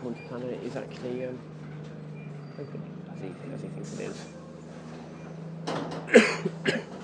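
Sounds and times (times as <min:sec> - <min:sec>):
low hum: 0:00.0 - 0:07.0
speech: 0:00.1 - 0:01.6, 0:02.6 - 0:04.4, 0:06.1 - 0:06.8
person coughing: 0:06.1 - 0:07.0.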